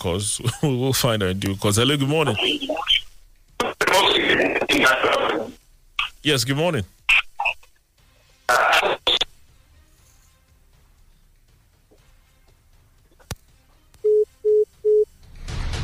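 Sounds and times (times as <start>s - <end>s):
speech: 0.0s - 2.9s, 6.2s - 7.0s
harsh static bursts on a troubled phone line: 2.0s - 7.8s, 8.5s - 9.4s
short electronic beeps of a phone dial tone: 14.1s - 15.1s.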